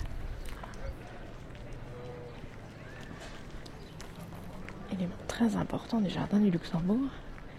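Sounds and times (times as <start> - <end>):
crunching footsteps on gravel: 0.0 - 5.5
busy outdoor murmur of voices: 0.0 - 7.5
speech: 4.9 - 7.3.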